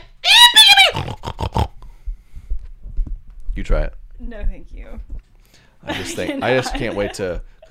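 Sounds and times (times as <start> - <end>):
person doing a loud high-pitched pig call: 0.3 - 1.8
speech: 4.6 - 7.7
laughter: 5.8 - 7.7.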